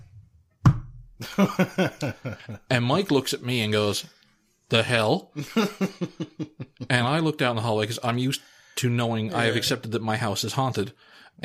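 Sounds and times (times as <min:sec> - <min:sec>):
dull solid knock in a bedroom: 0:00.6 - 0:01.0
laughter: 0:01.2 - 0:02.7, 0:05.4 - 0:07.2
speech: 0:01.4 - 0:11.4.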